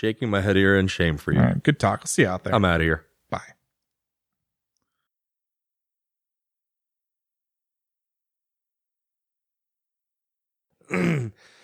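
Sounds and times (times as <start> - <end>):
speech: 0.0 - 3.6
throat clearing: 10.9 - 11.4.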